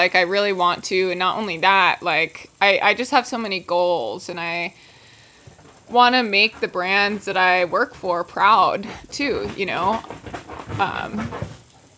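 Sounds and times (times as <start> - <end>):
speech: 0.0 - 4.9, 5.9 - 11.6
dog panting: 8.8 - 11.6.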